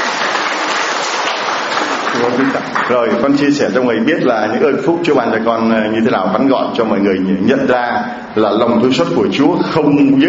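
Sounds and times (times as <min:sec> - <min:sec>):
audience clapping: 0:00.0 - 0:03.4
speech: 0:02.2 - 0:10.2.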